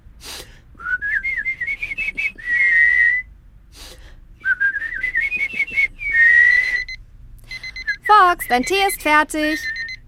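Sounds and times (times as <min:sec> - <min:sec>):
person whistling a bird-like call: 0:00.8 - 0:03.3, 0:04.5 - 0:06.9
speech: 0:08.5 - 0:09.8.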